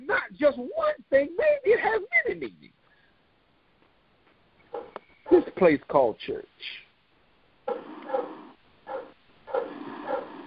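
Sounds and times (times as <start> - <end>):
speech: 0.4 - 1.6, 5.6 - 6.8
dog barking: 4.8 - 5.5, 7.7 - 10.4.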